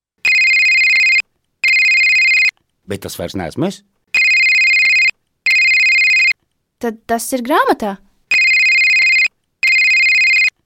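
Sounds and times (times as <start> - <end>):
electronic phone ringtone trilling: 0.2 - 2.5, 4.2 - 6.4, 8.3 - 10.5
speech: 2.9 - 4.0, 6.8 - 8.1.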